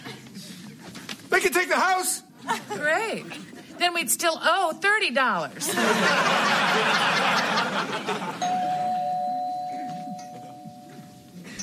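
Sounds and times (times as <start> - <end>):
speech: 1.3 - 8.4
studio laughter: 5.6 - 8.4
doorbell chime: 8.4 - 11.6.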